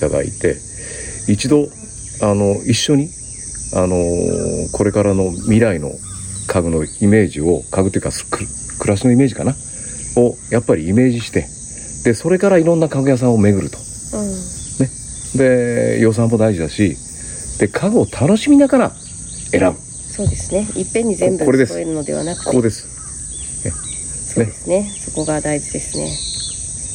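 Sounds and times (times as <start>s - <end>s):
speech: 0.0s - 17.0s, 17.6s - 22.9s, 23.6s - 23.8s, 24.4s - 26.3s
faint bird calls: 0.0s - 26.9s
high-pitched drone of cicadas on the deck of a home: 0.0s - 26.9s.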